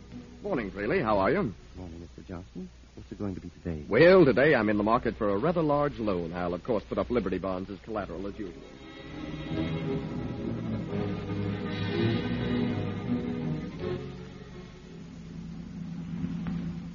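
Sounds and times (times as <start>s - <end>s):
speech: 0.4s - 9.4s
car engine humming while driving on an open road: 8.2s - 16.9s.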